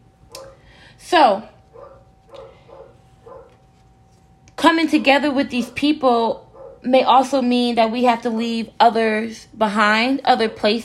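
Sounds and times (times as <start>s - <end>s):
female pet dog barking: 0.3s - 0.7s, 1.7s - 3.6s, 5.0s - 6.9s
speech: 1.0s - 1.6s, 4.6s - 10.8s.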